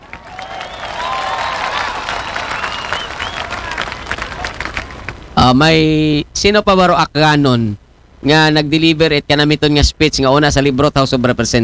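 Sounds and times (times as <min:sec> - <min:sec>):
scattered cheers: 0:00.0 - 0:04.8
audience applause for a congressman: 0:00.0 - 0:05.2
speech: 0:05.5 - 0:11.6.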